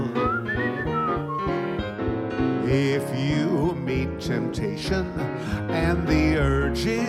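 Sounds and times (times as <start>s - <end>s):
human whistling a short melody: 0.0s - 1.9s
steady instrumental accompaniment: 0.0s - 3.6s
speech: 2.7s - 7.0s.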